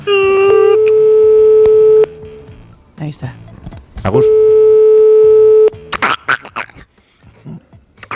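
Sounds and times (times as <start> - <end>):
electronic telephone tones from a call being placed: 0.1 - 2.2, 4.2 - 5.8
speech: 3.1 - 4.4.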